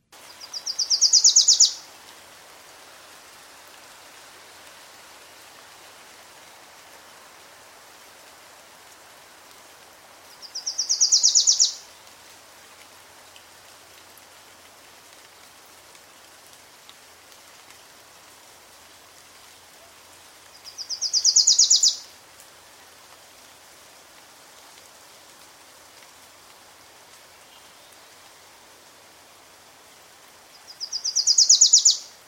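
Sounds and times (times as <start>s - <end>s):
steady hiss of rain-like noise: 0.0s - 32.2s
Wilson's Warbler singing rapid repeated chips: 0.3s - 1.8s, 10.4s - 11.8s, 20.7s - 22.0s, 30.7s - 32.1s.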